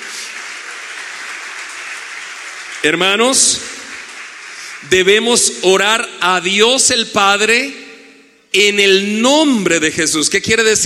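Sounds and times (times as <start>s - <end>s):
church congregation applauding: 0.0s - 5.6s
speech: 2.8s - 3.8s, 4.8s - 7.8s, 8.5s - 10.8s.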